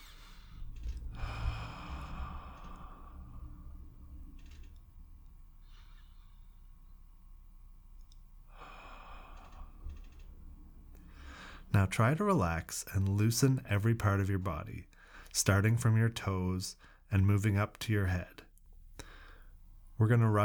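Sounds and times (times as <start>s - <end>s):
slow deep conscious breathing: 0.0s - 7.5s, 8.4s - 11.8s, 14.9s - 15.3s, 19.0s - 19.7s
speech: 11.8s - 18.4s, 20.0s - 20.4s.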